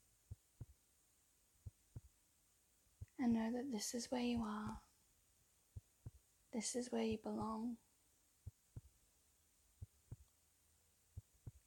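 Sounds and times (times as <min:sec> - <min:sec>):
faint constant hum: 0:00.0 - 0:11.6
slow steady heartbeat: 0:00.3 - 0:00.8, 0:01.6 - 0:02.2, 0:03.0 - 0:03.2, 0:04.2 - 0:04.8, 0:05.7 - 0:06.3, 0:07.1 - 0:07.7, 0:08.4 - 0:09.0, 0:09.8 - 0:10.3, 0:11.2 - 0:11.6
speech: 0:03.2 - 0:04.9, 0:06.6 - 0:07.8.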